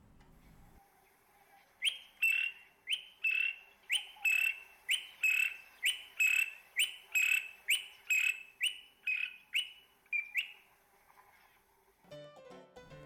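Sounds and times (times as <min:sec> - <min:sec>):
Greater honeyguide calling from treetop: 0:01.8 - 0:10.6.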